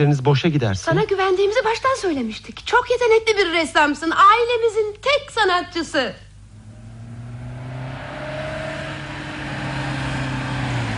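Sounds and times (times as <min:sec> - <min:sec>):
speech: 0:00.0 - 0:06.2
car engine humming as vehicle approaches: 0:06.4 - 0:10.9.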